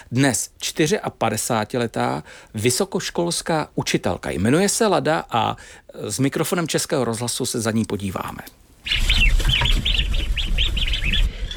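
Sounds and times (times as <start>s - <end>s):
speech: 0.1s - 9.5s
ducks chattering and calling after being fed on a farm in the Šumava region: 8.8s - 11.5s.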